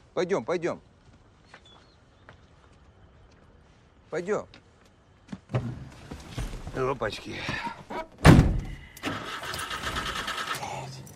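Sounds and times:
speech: 0:00.2 - 0:00.9, 0:04.1 - 0:04.6, 0:05.5 - 0:05.8, 0:06.8 - 0:07.7
sharp loud thud: 0:08.2 - 0:08.8
car engine cranking but failing to start from a dead battery: 0:09.0 - 0:11.1.

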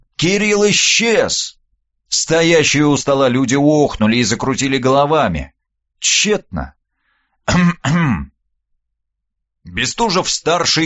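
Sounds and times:
speech: 0:00.2 - 0:06.8, 0:07.5 - 0:08.3, 0:09.6 - 0:10.8
person clearing throat with a brief cough: 0:07.5 - 0:08.4.

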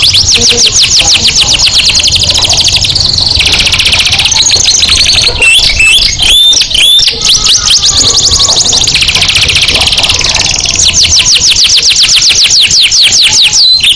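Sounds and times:
canary singing in rapid trills and sharp downward-sweeping notes: 0:00.0 - 0:13.9.

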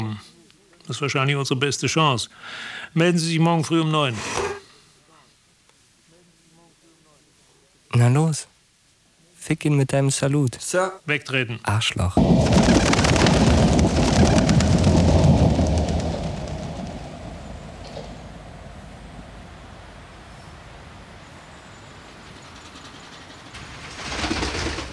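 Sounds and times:
speech: 0:00.9 - 0:04.5, 0:08.1 - 0:08.5, 0:09.4 - 0:14.4
train passing: 0:12.2 - 0:24.9.

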